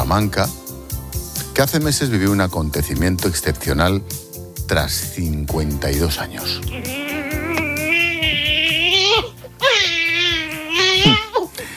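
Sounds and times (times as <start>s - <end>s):
speech: 0.1s - 0.6s, 1.6s - 7.3s
newborn baby crying in a small village in Salamanca: 6.5s - 11.5s.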